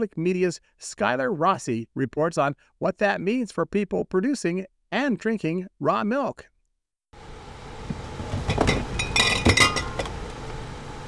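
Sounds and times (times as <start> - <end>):
speech: 0.0 - 6.5
glass milk jars clinking as lifted out of a cooler: 8.4 - 10.2.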